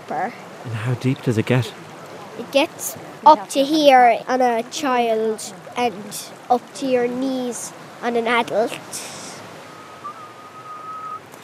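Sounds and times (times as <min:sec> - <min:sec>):
speech: 0:00.1 - 0:09.2
rushing surf or wind noise: 0:01.7 - 0:11.4
person whistling while walking: 0:09.7 - 0:11.2.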